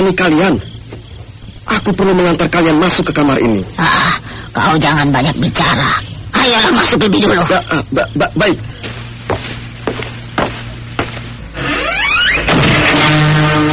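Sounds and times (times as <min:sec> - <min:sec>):
speech: 0:00.1 - 0:00.7, 0:01.7 - 0:09.0
footsteps: 0:08.7 - 0:11.4
room door creaking: 0:11.6 - 0:13.6.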